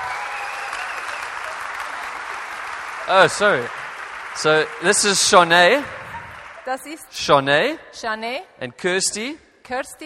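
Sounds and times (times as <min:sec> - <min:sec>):
audience applauding at a bible-institute gathering in Europe: 0:00.0 - 0:07.0
speech: 0:03.1 - 0:03.8, 0:04.4 - 0:06.0, 0:06.6 - 0:10.0.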